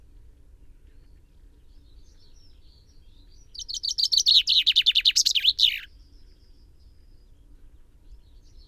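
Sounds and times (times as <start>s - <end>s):
common chaffinch Fringilla coelebs singing: 3.4s - 5.9s.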